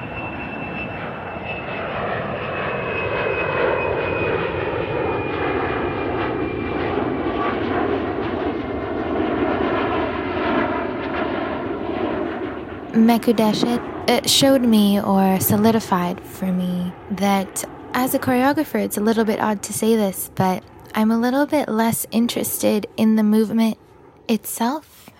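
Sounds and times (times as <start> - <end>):
airplanes passing overhead with engine roar: 0.0 - 25.1
speech: 13.0 - 25.0.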